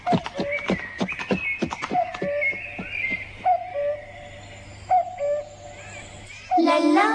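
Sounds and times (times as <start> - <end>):
horse hooves clopping: 0.0 - 3.5
short tonal calls: 0.0 - 7.0.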